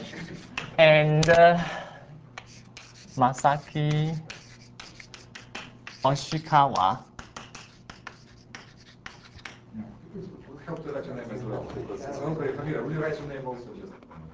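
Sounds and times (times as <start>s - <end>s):
pen handwriting a name: 0.0s - 0.8s, 2.4s - 9.6s
speech: 0.8s - 1.8s, 3.2s - 4.4s, 6.0s - 7.1s, 10.9s - 14.0s.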